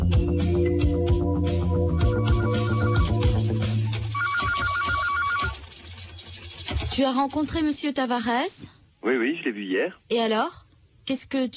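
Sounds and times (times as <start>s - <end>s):
sustained tonal music: 0.2s - 4.2s
electronic telephone ring warbling in a rapid trill: 2.0s - 5.7s
speech: 7.0s - 11.5s.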